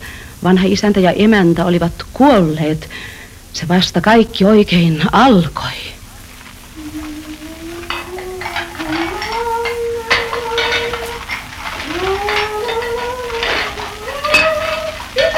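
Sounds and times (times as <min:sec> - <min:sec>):
speech: 0:00.4 - 0:05.9
pots and cutlery clinking while dishes are washed: 0:06.3 - 0:15.3.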